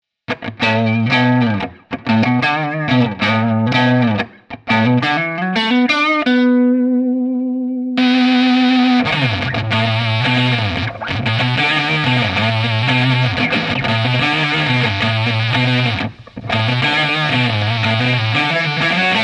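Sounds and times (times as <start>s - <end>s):
fuzz guitar with neck and bridge pickups: 0.3s - 19.2s.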